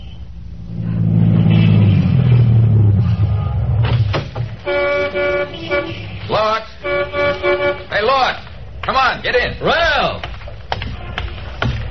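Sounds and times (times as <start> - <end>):
new Cadillac sedan engine rumbling as it pulls to a stop on a New Orleans corner: 0.0 - 11.8
new Cadillac sedan horn honking: 3.0 - 4.0, 4.6 - 8.4.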